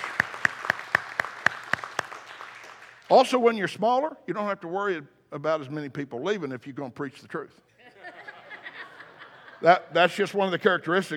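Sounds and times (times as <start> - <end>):
church congregation clapping hands in unison: 0.0 - 3.2
speech: 3.1 - 7.7, 9.6 - 11.1.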